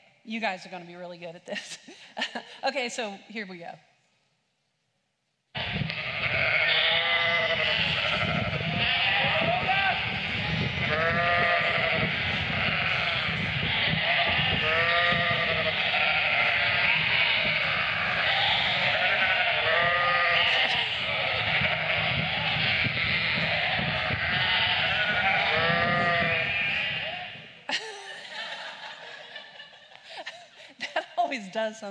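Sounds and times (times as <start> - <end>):
speech: 0.2 - 3.9, 31.6 - 31.8
laughter: 1.5 - 2.6, 27.6 - 31.2
flock of sheep bleating: 5.6 - 27.5.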